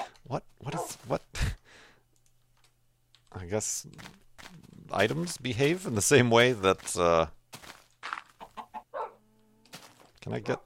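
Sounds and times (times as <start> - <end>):
speech: 0.3 - 0.5, 3.5 - 4.2, 4.9 - 7.4, 10.3 - 10.6
chicken clucking: 8.4 - 9.6.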